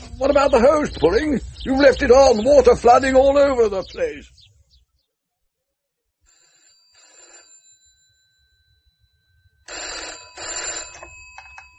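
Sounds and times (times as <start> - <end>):
speech: 0.2 - 4.4
telephone ringing: 6.3 - 11.7.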